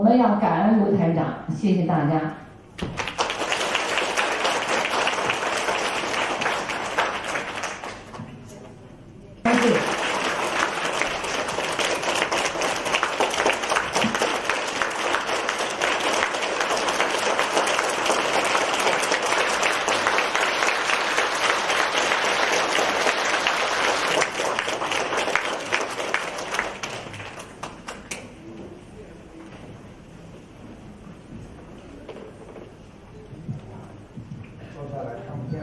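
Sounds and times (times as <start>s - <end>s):
speech: 0.0s - 3.0s
applause from a large audience: 2.8s - 8.2s, 9.5s - 28.2s.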